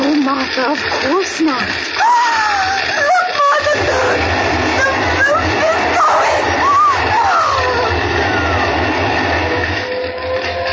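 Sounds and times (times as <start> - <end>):
fire engine's heavy engine rumbling: 0.0 - 10.7
speech: 0.5 - 2.5
faint wailing tones of a fire engine: 3.0 - 10.7.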